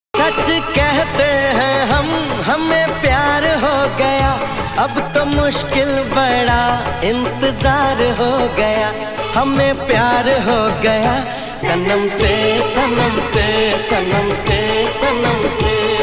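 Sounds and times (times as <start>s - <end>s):
old song: 0.1s - 16.0s.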